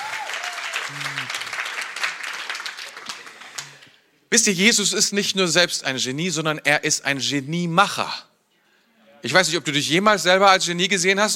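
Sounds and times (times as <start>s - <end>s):
audience applause: 0.0s - 4.0s
speech: 0.9s - 1.4s, 4.3s - 8.3s, 9.2s - 11.3s.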